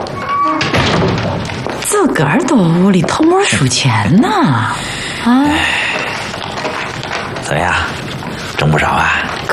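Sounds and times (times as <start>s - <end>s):
door being pushed shut: 0.2s - 1.5s
speech: 2.2s - 6.0s, 7.5s - 9.5s.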